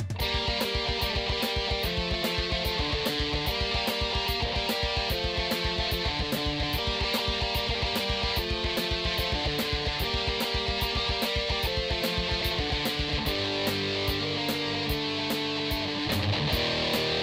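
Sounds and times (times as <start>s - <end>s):
power metal music: 0.1s - 17.2s.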